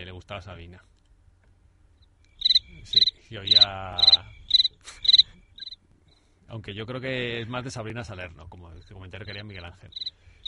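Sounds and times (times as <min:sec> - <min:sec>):
speech: 0:00.2 - 0:01.0, 0:02.8 - 0:05.0, 0:06.5 - 0:10.2
crickets chirping: 0:02.0 - 0:06.3, 0:08.8 - 0:10.4.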